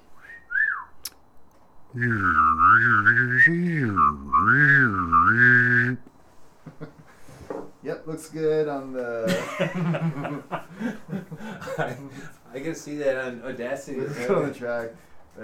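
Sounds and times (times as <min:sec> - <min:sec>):
person mouth whistling: 0:00.1 - 0:01.2, 0:01.9 - 0:06.1
speech: 0:01.9 - 0:06.1, 0:06.7 - 0:07.0, 0:07.8 - 0:15.4
laughter: 0:06.6 - 0:07.2, 0:09.2 - 0:12.5.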